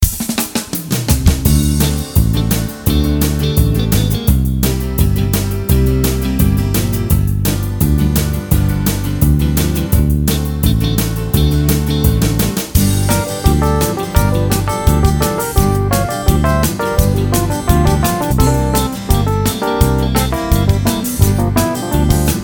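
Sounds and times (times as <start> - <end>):
country rock music: 1.5 - 22.4.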